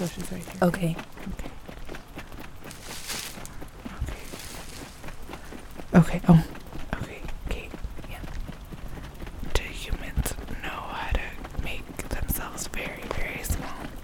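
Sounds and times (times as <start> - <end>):
speech: 0.0 - 1.4, 6.0 - 6.6
horse hooves clip-clopping: 0.0 - 14.0
hushed whispering: 9.6 - 14.0.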